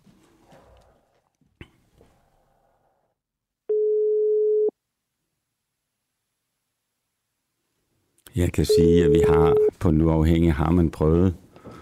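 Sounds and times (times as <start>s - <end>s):
telephone ringing tone: 3.7s - 4.7s, 8.7s - 9.7s
speech: 8.4s - 11.4s.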